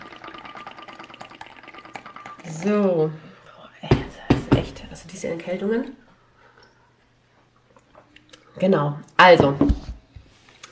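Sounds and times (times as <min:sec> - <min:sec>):
warm tea pouring into a cup: 0:00.0 - 0:02.8
speech: 0:02.4 - 0:03.2, 0:05.1 - 0:06.0, 0:08.6 - 0:09.9.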